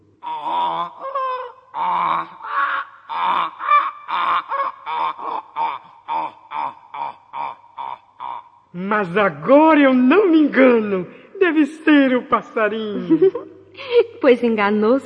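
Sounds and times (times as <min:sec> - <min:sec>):
donkey braying: 0:00.2 - 0:09.1
speech: 0:08.8 - 0:13.4, 0:14.2 - 0:15.0
laughter: 0:11.4 - 0:13.5.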